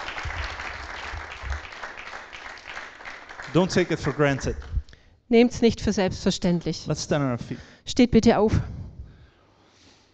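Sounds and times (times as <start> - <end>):
audience applause at a church gathering: 0.0 - 4.7
speech: 3.5 - 4.7, 5.3 - 8.7.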